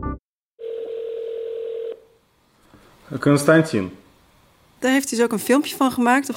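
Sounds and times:
telephone dial tone while placing a call: 0.6s - 2.0s
faint hiss: 2.3s - 4.9s
speech: 3.1s - 4.0s, 4.8s - 6.3s.

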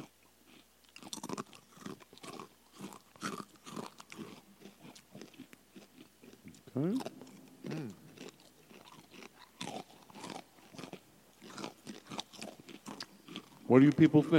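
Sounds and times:
chewing: 0.0s - 14.3s
crunching food against the microphone: 0.0s - 14.3s
person murmuring between mouthfuls: 6.7s - 8.2s
speech: 6.8s - 7.1s, 13.7s - 14.3s.

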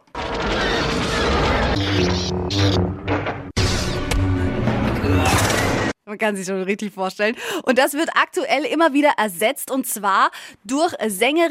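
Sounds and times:
sci-fi energy-blade tones buzzing and humming: 0.0s - 5.9s
booming explosions in sci-fi battle effects: 0.0s - 6.0s
speech: 6.1s - 11.4s.

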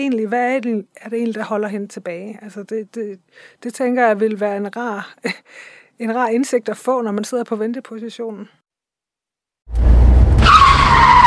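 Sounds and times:
speech: 0.0s - 8.6s, 9.7s - 10.2s
car tyres skidding and squealing: 9.8s - 11.2s.

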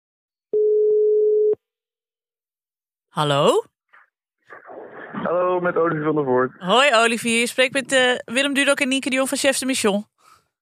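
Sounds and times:
telephone ringing tone while a call is placed: 0.6s - 1.6s
speech: 3.2s - 3.7s, 5.2s - 10.1s.

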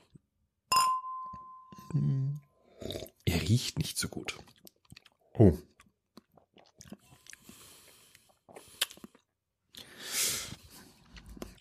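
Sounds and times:
two glasses of bitter Bock beer clinking in a toast: 0.7s - 1.8s
speech: 1.9s - 4.6s, 5.4s - 5.7s.

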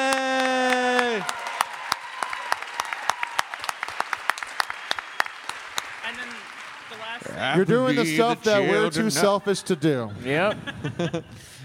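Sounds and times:
crowd clapping: 0.0s - 8.3s
speech: 7.4s - 11.6s
laughter: 7.8s - 11.6s.

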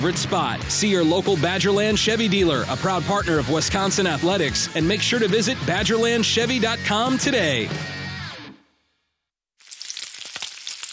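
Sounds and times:
speech: 0.0s - 8.0s
sausage strips sizzling in a hot pan: 9.6s - 10.9s.

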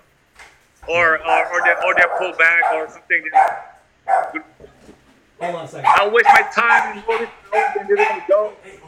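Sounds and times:
speech: 0.9s - 4.8s, 5.4s - 8.8s
dog barking excitedly: 1.0s - 4.6s, 5.8s - 8.5s.

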